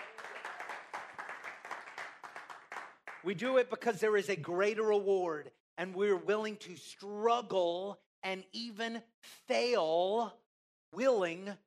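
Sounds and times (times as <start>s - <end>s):
crowd clapping hands: 0.0s - 3.6s
speech: 3.2s - 11.6s.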